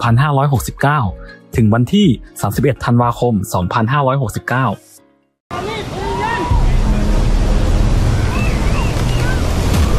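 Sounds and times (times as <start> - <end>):
speech: 0.0 - 4.9
blustery wind: 5.5 - 9.9
ocean waves roaring against the shore: 5.5 - 9.9
deep rumble: 6.5 - 9.9.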